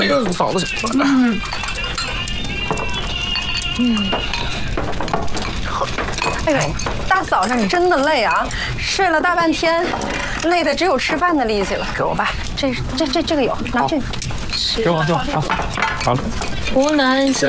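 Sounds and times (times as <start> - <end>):
dishes and utensils clinking as bowls and chopsticks are set out for a meal: 0.0 - 17.4
several people chatting: 3.8 - 4.2, 6.5 - 17.4.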